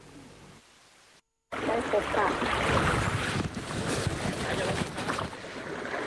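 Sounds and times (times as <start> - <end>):
faint water splashes on a lake during kayaking: 1.5 - 6.0
speech: 1.8 - 3.0
breeze buffeting the microphone over a lake above a dam during kayaking: 2.6 - 5.4.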